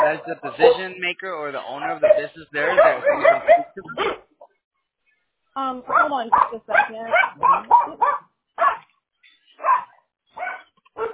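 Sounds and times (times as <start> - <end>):
dog barking during a phone call: 0.0 - 1.0, 1.8 - 4.3, 5.8 - 8.9, 9.6 - 11.1
speech: 0.1 - 4.3, 5.6 - 8.2.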